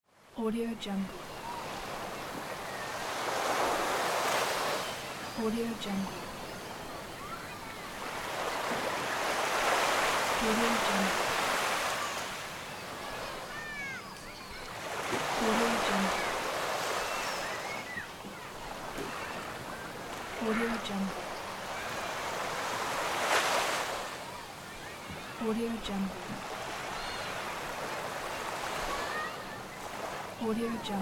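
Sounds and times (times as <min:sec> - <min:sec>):
beach ambience: 0:00.0 - 0:31.0.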